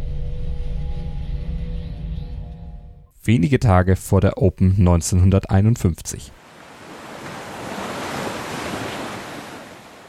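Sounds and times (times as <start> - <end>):
speech: 3.3 - 6.4
ocean waves breaking on a beach: 6.4 - 10.0.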